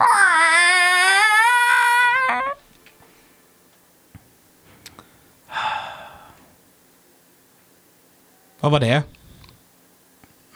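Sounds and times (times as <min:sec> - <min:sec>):
loud wavering wail: 0:00.0 - 0:02.6
faint clicks: 0:02.7 - 0:05.1, 0:09.1 - 0:10.5
short breathy gasp: 0:04.9 - 0:06.5
speech: 0:08.6 - 0:09.2.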